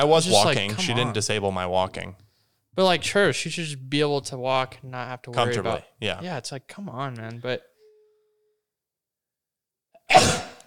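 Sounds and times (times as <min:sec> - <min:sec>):
speech: 0:00.0 - 0:02.2, 0:02.8 - 0:07.7, 0:10.1 - 0:10.5
sneeze: 0:10.1 - 0:10.6.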